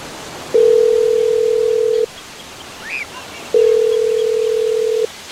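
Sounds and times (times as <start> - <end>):
telephone ringing on an outgoing call: 0.5 - 2.1, 3.5 - 5.1.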